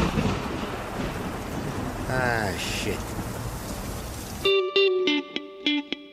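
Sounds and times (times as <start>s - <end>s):
low rolling thunder: 0.0s - 4.5s
steady heavy rain: 0.0s - 6.0s
speech: 2.1s - 3.2s.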